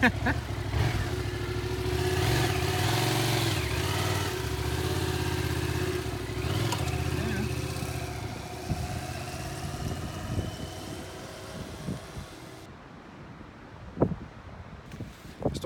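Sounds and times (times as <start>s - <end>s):
speech: 0.0s - 0.5s
new motorcycle engine revving as it pulls away: 0.0s - 12.7s.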